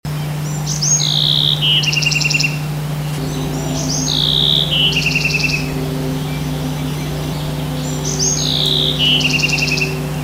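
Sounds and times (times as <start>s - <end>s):
Bewick's wren: 0.6s - 10.2s.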